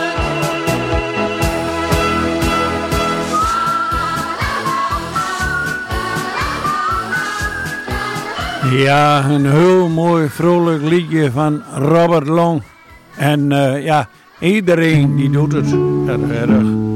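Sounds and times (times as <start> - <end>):
bouncy band backing with a steady thumping beat: 0.0 - 8.6
person whistling a cheerful tune: 2.9 - 8.0
speech: 8.7 - 16.8.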